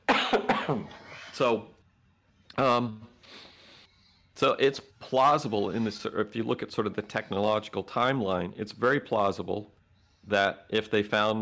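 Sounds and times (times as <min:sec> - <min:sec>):
person coughing: 0:00.0 - 0:01.2
speech: 0:00.7 - 0:01.8, 0:02.6 - 0:03.5, 0:04.4 - 0:11.4.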